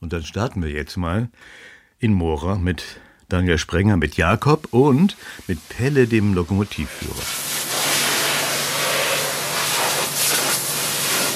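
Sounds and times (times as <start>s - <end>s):
speech: 0.1s - 7.4s
compressed air blowing dust from beneath a train at Mora station: 4.4s - 11.3s.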